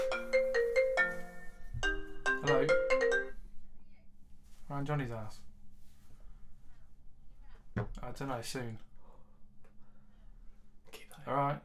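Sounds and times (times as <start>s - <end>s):
mobile phone ringtone of melodic electronic notes: 0.0s - 3.4s
speech: 4.8s - 5.5s, 8.0s - 8.9s, 11.2s - 11.6s.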